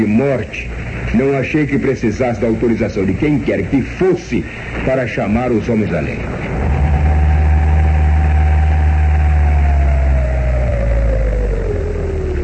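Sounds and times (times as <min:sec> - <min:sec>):
speech: 0:00.0 - 0:06.5
stopped car engine idling outside: 0:05.7 - 0:12.4.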